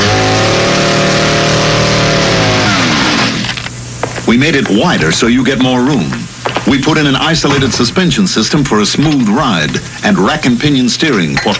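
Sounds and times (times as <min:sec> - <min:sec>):
AMC Pacer small-car engine revving with rising whine: 0:00.0 - 0:03.6
speech: 0:04.3 - 0:11.5.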